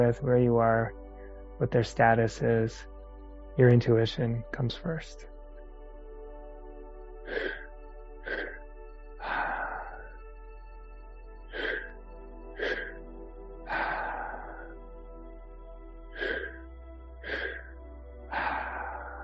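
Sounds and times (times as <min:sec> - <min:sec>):
speech: 0:00.0 - 0:01.0, 0:01.6 - 0:02.9, 0:03.6 - 0:05.3
deliberate breathing during a breathwork practice: 0:07.2 - 0:10.8, 0:11.4 - 0:15.4, 0:16.1 - 0:19.2.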